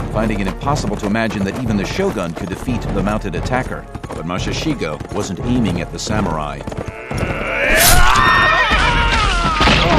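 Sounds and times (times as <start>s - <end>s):
speech: 0.2s - 7.9s
pony's shrill whinny as a sword cuts its foreleg: 6.7s - 9.8s.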